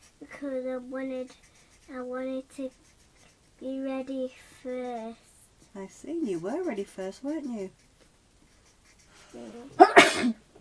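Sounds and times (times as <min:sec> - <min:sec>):
speech: 0:00.4 - 0:02.9, 0:03.6 - 0:05.2, 0:05.8 - 0:07.8, 0:09.3 - 0:10.4
sneeze: 0:09.8 - 0:10.4.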